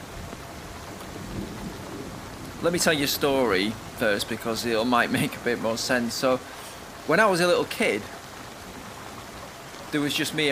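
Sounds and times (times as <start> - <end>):
low rumble of thunder: 0.0 - 4.0
steady rain during a storm: 0.0 - 10.5
speech: 2.6 - 8.2, 9.9 - 10.5.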